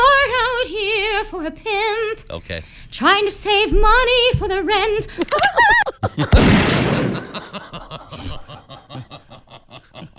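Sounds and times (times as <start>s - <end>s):
woman singing a rap song in operatic style: 0.0s - 2.2s, 3.0s - 5.8s
speech: 1.4s - 10.1s
laughter: 5.3s - 10.1s.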